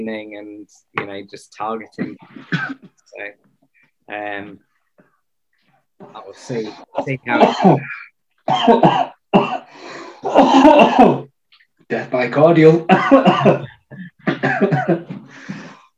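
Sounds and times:
speech: 0.0s - 4.7s, 6.0s - 11.3s, 11.9s - 15.6s
harsh coughing fit with raspy hacks: 2.0s - 3.0s, 6.5s - 11.3s, 12.9s - 15.7s.

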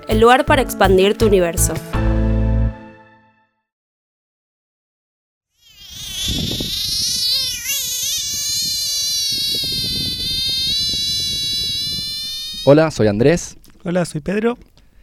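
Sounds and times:
speech: 0.1s - 2.0s, 12.7s - 14.7s
toad wailing call: 5.6s - 12.9s
noise: 12.6s - 15.0s.

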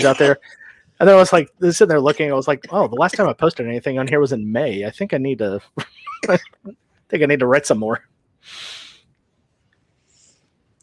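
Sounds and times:
speech: 0.0s - 8.8s
woman coughing: 6.1s - 6.6s
faint airy exhale: 8.4s - 9.0s.

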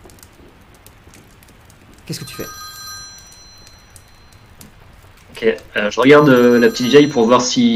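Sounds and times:
crackling hissy background: 0.0s - 7.7s
speech: 2.1s - 2.6s, 5.4s - 7.7s
telephone bell ringing: 2.2s - 4.6s, 6.0s - 7.7s.

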